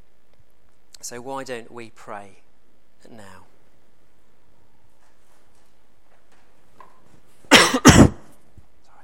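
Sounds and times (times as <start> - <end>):
speech: 1.1 - 3.5
person coughing: 7.5 - 8.3
throat clearing: 7.5 - 8.3.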